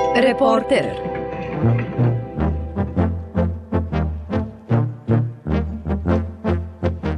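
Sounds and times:
speech: 0.2s - 1.9s
brass trumpets playing at a trumpet players' gathering: 1.5s - 7.1s.

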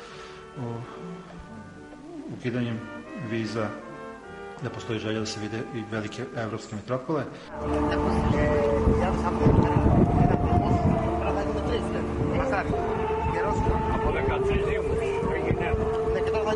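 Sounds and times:
song playing on board a tourist boat: 0.5s - 6.5s, 7.5s - 16.5s
speech: 0.6s - 3.9s, 4.6s - 11.1s, 11.7s - 16.0s
small tourist boat engine rumble on the Ionian Sea: 7.5s - 16.5s.

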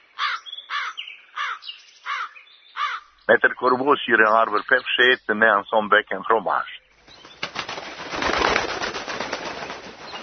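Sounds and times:
speech: 3.3s - 6.8s
raven's wings flapping as it flies onto a branch: 7.0s - 10.2s.

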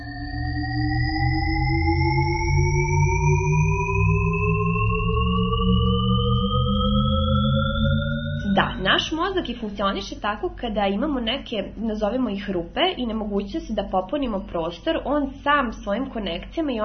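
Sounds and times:
Shepard tone illusion of stacked tones gliding upward: 0.0s - 9.8s
low rumbling hum: 0.0s - 16.8s
speech: 9.3s - 16.8s.

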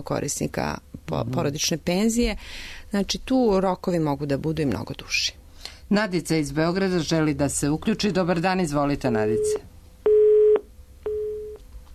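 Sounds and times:
speech: 0.0s - 9.7s
low hum: 0.0s - 11.9s
telephone busy signal after a call line drops: 9.4s - 11.6s.

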